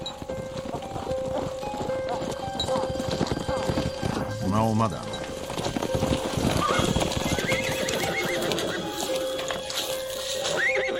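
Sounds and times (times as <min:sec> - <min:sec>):
horse hooves clip-clopping: 0:00.0 - 0:10.9
speech: 0:04.6 - 0:05.1
nimble horse neighing: 0:06.5 - 0:09.1, 0:10.4 - 0:10.9.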